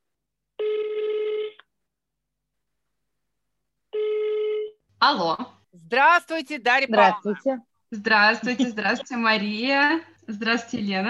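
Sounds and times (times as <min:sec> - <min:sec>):
telephone ringback tones while a call is placed: 0:00.6 - 0:01.6, 0:04.0 - 0:04.8
speech: 0:05.0 - 0:11.0.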